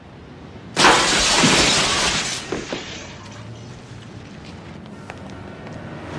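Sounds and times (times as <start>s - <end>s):
window shattering as a man is thrown through it: 0.8s - 3.5s.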